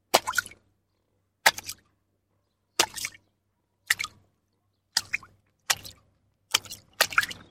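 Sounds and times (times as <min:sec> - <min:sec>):
person's footsteps in water: 0:00.0 - 0:00.7, 0:01.4 - 0:01.9, 0:02.8 - 0:03.2, 0:03.8 - 0:04.3, 0:04.9 - 0:07.4.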